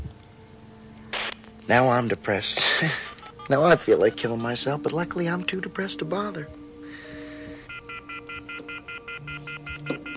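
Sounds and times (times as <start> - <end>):
speech: 1.7 - 6.6
telephone off-the-hook warning tone: 7.7 - 10.1.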